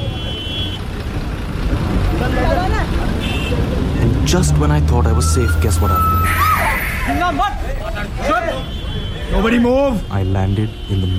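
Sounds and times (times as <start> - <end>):
moving bus rumbling through busy traffic: 0.0 - 11.1
speech: 4.3 - 11.1.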